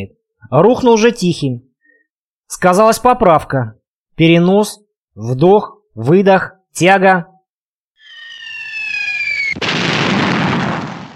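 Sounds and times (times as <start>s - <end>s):
speech: 0.0s - 1.7s, 2.5s - 7.3s
cannon shell whistling in with descending high-pitched tone: 8.0s - 9.6s
cannon shell exploding in a hollow with roaring blast: 9.2s - 11.1s.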